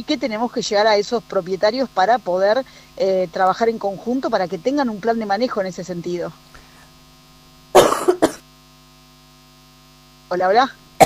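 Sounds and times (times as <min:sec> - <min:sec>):
speech: 0:00.0 - 0:06.5, 0:10.3 - 0:10.8
faint electrical hum: 0:00.0 - 0:11.0
person coughing: 0:07.8 - 0:08.4.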